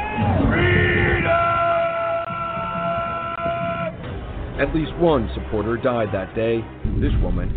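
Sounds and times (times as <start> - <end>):
mob yelling while storming a building: 0.0 - 4.2
speech: 4.6 - 7.5.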